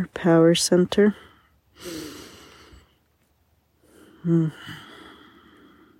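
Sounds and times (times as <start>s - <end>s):
speech: 0.0s - 2.1s, 4.2s - 4.8s
slow deep belly breathing: 1.1s - 3.1s, 3.8s - 5.9s.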